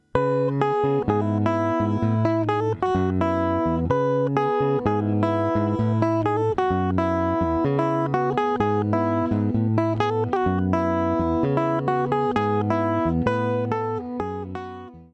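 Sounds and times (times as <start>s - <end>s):
main guitar riff: 0.0s - 15.1s.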